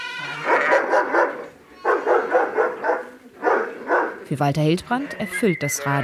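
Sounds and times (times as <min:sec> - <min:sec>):
dog barking in rapid yaps: 0:00.4 - 0:04.3
speech: 0:04.3 - 0:06.0.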